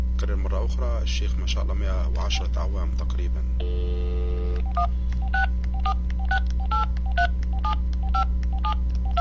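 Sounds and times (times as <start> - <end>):
speech: 0.2 - 8.8
telephone dial tone: 3.6 - 9.1
touch-tone telephone keypad beeps: 4.5 - 9.1.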